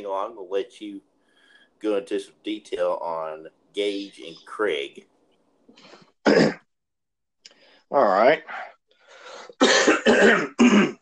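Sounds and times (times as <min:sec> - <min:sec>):
speech: 0:00.0 - 0:01.1, 0:01.8 - 0:05.1, 0:05.7 - 0:06.6, 0:07.9 - 0:08.7, 0:09.6 - 0:11.0
person clearing throat roughly: 0:06.2 - 0:06.7, 0:09.6 - 0:11.0
person coughing loud and harsh: 0:06.2 - 0:06.7, 0:09.6 - 0:11.0.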